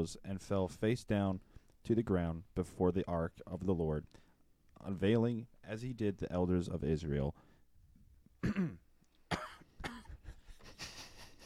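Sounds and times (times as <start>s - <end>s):
speech: 0.0s - 4.2s, 4.8s - 7.5s, 8.4s - 8.8s
rough throaty clearing sound: 8.4s - 10.2s
sharp coughs: 8.4s - 10.3s.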